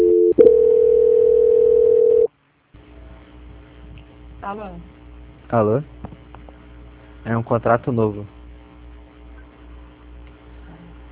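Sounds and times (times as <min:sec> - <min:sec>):
telephone line tone during a call transfer: 0:00.0 - 0:02.3
speech: 0:04.5 - 0:06.0, 0:07.2 - 0:08.4.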